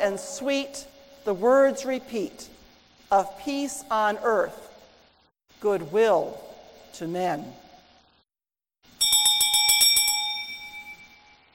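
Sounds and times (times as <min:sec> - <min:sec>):
speech: 0:00.0 - 0:04.7, 0:05.6 - 0:07.6
bright Christmas bells ringing in a jingling burst: 0:09.0 - 0:11.4.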